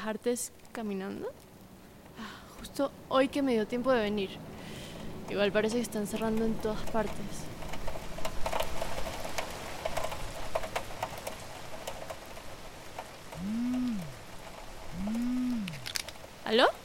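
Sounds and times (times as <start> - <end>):
speech: 0.0 - 1.5, 2.2 - 7.5, 16.5 - 16.8
steady rain pattering on a hard surface in a city centre: 0.0 - 16.8
brief low swooping tones: 14.9 - 15.9.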